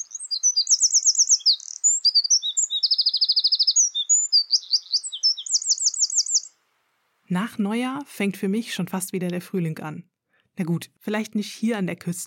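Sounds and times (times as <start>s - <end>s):
songbirds singing with trills and chirps: 0.0s - 6.6s
speech: 7.3s - 12.2s.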